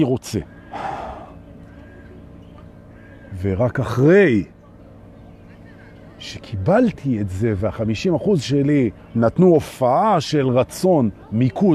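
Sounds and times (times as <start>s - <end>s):
speech: 0.0s - 0.9s, 3.3s - 4.6s, 6.2s - 11.7s
human breath with sharp gasp-like intake and softer exhale: 0.5s - 2.1s.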